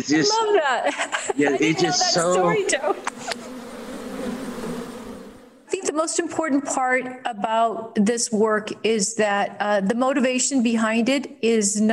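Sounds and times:
speech: 0:00.0 - 0:03.4, 0:06.0 - 0:11.9
laughter: 0:00.0 - 0:03.5
honey bees buzzing in a swarm: 0:01.3 - 0:05.8.

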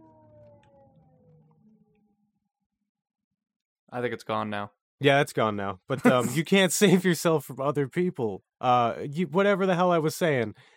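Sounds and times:
ambulance siren wailing in long steady tones: 0:00.0 - 0:02.2
speech: 0:03.9 - 0:10.7.

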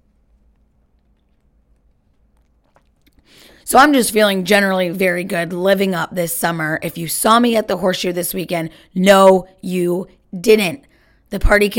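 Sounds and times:
person sipping a drink: 0:00.0 - 0:03.6
low steady hum: 0:00.0 - 0:11.7
faint wet mouth clicks: 0:00.3 - 0:03.4
speech: 0:03.7 - 0:11.7.

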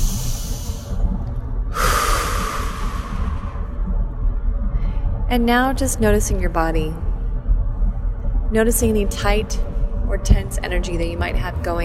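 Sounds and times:
deep breath during a guided gratitude meditation: 0:00.0 - 0:01.0, 0:01.7 - 0:03.8
low steady hum: 0:00.0 - 0:11.8
speech: 0:05.3 - 0:07.1, 0:08.5 - 0:11.8.

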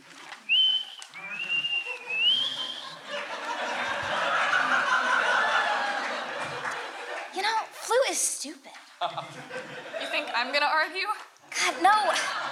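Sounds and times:
person whistling: 0:00.4 - 0:03.0
laughter: 0:01.1 - 0:07.4, 0:09.0 - 0:10.6, 0:11.5 - 0:12.5
speech: 0:08.4 - 0:12.5.

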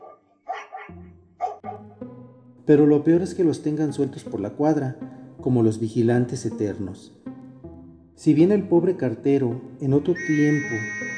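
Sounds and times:
neighborhood dog barking: 0:00.0 - 0:01.9
speech: 0:02.7 - 0:07.2, 0:08.2 - 0:11.1.

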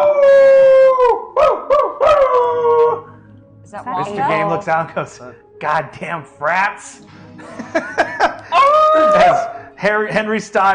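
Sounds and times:
men howling at the full moon: 0:00.0 - 0:03.2, 0:07.6 - 0:09.8
speech: 0:04.0 - 0:08.1, 0:09.2 - 0:10.7
laughter: 0:07.4 - 0:10.3.

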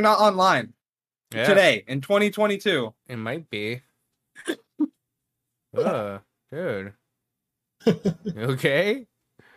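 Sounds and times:
speech: 0:00.0 - 0:04.6, 0:05.8 - 0:07.0, 0:07.8 - 0:09.1
person making a disgusted gagging sound: 0:05.8 - 0:06.2.

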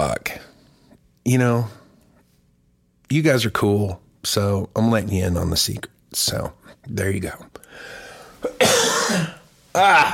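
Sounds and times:
speech: 0:01.2 - 0:01.8, 0:03.1 - 0:10.1
person coughing: 0:08.4 - 0:10.1.

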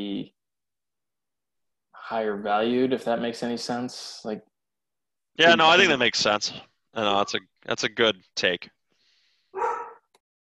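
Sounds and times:
speech: 0:00.0 - 0:00.4, 0:02.1 - 0:04.5, 0:05.4 - 0:08.8
dog barking in a house: 0:09.6 - 0:10.1.

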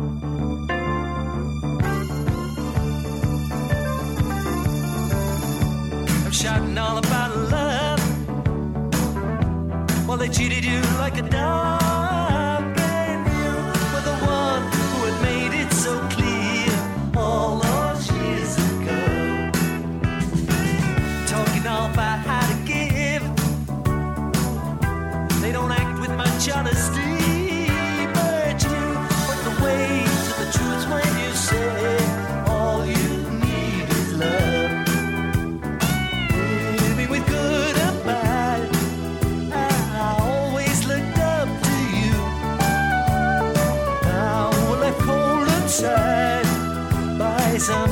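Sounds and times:
bass: 0:00.0 - 0:47.9
bright guitars: 0:00.0 - 0:47.9
upbeat 1980s-style pop rock song: 0:00.0 - 0:47.9
steady driving drum beat: 0:01.8 - 0:47.9
male lead vocal singing: 0:06.2 - 0:08.2, 0:10.0 - 0:19.8, 0:20.5 - 0:23.5, 0:25.3 - 0:35.3, 0:36.2 - 0:47.9
speech: 0:06.4 - 0:07.6, 0:10.2 - 0:12.3.

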